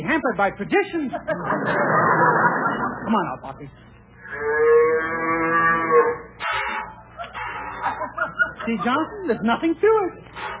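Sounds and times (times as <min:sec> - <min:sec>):
speech: 0:00.1 - 0:05.2, 0:08.7 - 0:10.5
laughter: 0:00.9 - 0:03.5, 0:07.1 - 0:09.7
cow being milked mooing: 0:04.2 - 0:08.0.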